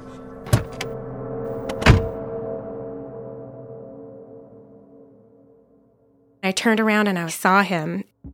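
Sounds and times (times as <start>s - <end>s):
car engine idling: 0.5s - 0.9s, 1.5s - 2.2s
sharp mechanical thunks: 0.5s - 0.9s, 1.5s - 2.2s
speech: 6.5s - 8.1s.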